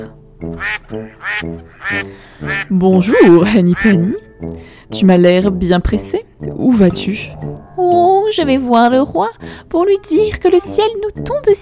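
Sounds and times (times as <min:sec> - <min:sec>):
speech: 0:00.0 - 0:11.6
duck quacking: 0:00.6 - 0:04.2.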